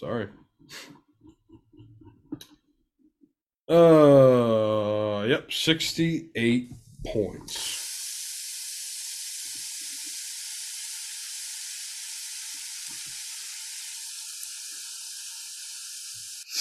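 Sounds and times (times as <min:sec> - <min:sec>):
speech: 0:00.0 - 0:01.0, 0:03.7 - 0:07.8
food sizzling on a hot grill: 0:07.5 - 0:16.5.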